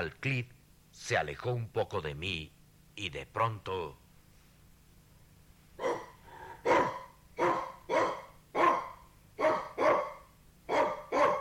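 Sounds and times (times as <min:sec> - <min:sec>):
speech: 0:00.0 - 0:04.0
faint low hum: 0:00.0 - 0:11.4
small white dog barking: 0:05.8 - 0:11.4.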